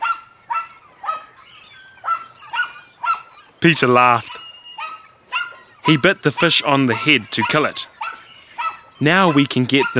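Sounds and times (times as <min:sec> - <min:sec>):
dog barking at a fish: 0:00.0 - 0:03.4, 0:04.8 - 0:06.0, 0:06.9 - 0:09.9
speech: 0:03.6 - 0:04.3, 0:05.8 - 0:07.9, 0:09.0 - 0:09.9.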